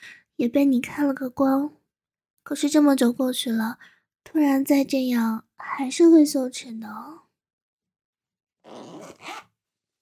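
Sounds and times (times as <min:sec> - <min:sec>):
speech: 0:00.4 - 0:01.8, 0:02.5 - 0:07.2
clothing zipper being pulled open: 0:08.6 - 0:09.6.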